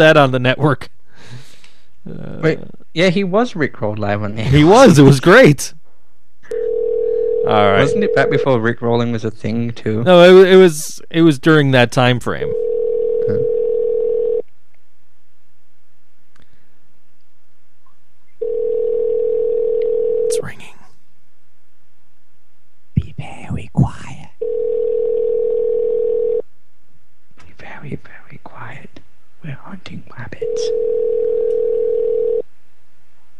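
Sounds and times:
speech: 0.0s - 1.4s, 2.0s - 5.8s, 7.4s - 12.6s, 13.3s - 13.5s
telephone ringing tone while a call is placed: 6.5s - 8.5s, 12.5s - 14.4s, 18.4s - 20.4s, 24.4s - 26.4s, 30.4s - 32.5s.

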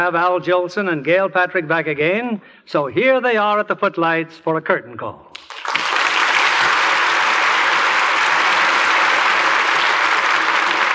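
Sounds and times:
speech: 0.0s - 5.7s
large studio audience applause: 5.4s - 10.9s.

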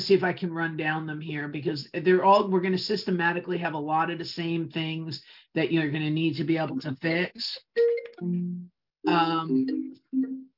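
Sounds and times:
speech: 0.0s - 10.5s
phone ringtone with electronic chiming melody: 9.1s - 10.5s.

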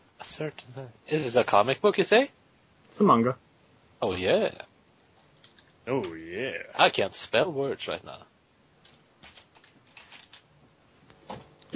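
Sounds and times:
speech: 0.3s - 4.7s, 5.8s - 8.3s
typing on a computer keyboard: 8.8s - 10.5s.

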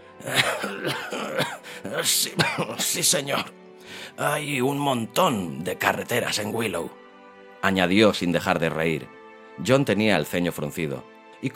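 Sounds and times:
thick phlegmy smoker's cough: 0.2s - 3.6s
speech: 0.2s - 7.0s, 7.6s - 11.5s.

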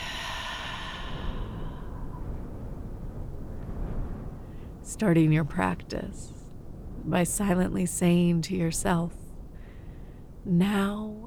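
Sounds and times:
deep breath released as a long breathy exhale during a guided meditation: 0.0s - 2.5s
speech: 4.9s - 6.4s, 7.1s - 9.2s, 10.4s - 11.2s.

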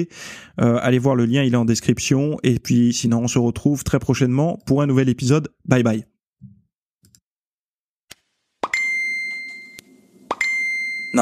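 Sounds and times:
speech: 0.0s - 6.1s
bright chime played to attract attention: 8.7s - 11.1s.

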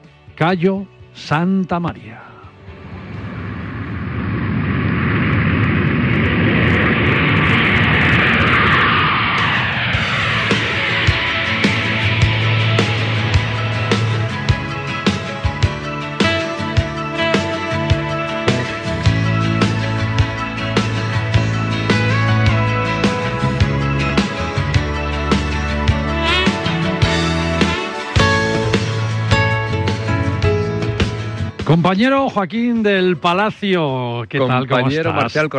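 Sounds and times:
speech: 0.4s - 2.3s, 31.8s - 35.5s
Iberojet airliner jet roar taking off: 2.3s - 31.6s
music with a steady beat: 10.7s - 31.6s.

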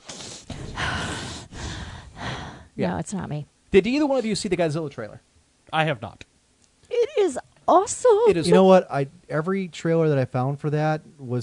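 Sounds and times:
heavy breathing into a microphone: 0.0s - 2.8s
speech: 2.8s - 6.3s, 7.2s - 11.4s.

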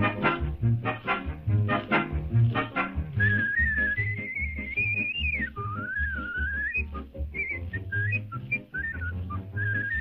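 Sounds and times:
rhythmic instrumental music: 0.0s - 9.9s
person whistling a wandering melodic tune: 3.2s - 9.9s.

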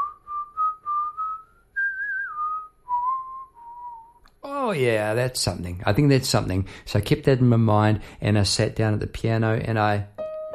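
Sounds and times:
person whistling a tune while walking: 0.0s - 4.2s
speech: 4.7s - 10.2s.

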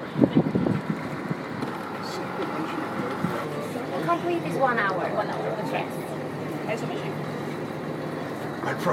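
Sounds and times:
wind buffeting the microphone on a boat: 0.0s - 2.5s
steady low engine rumble on board a boat: 0.0s - 8.9s
voices on a boat: 1.6s - 8.9s
speech: 4.2s - 7.4s, 8.7s - 8.9s.

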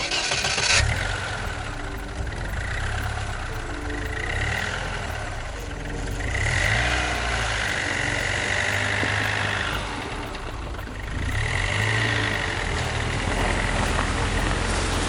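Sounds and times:
car engine starting: 0.0s - 15.0s.

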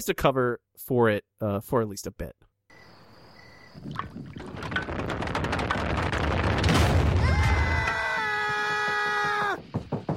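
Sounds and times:
speech: 0.0s - 2.5s, 3.8s - 4.2s
liquor still exploding in an animated cartoon: 4.4s - 8.2s
sharp knocks: 4.4s - 10.1s.

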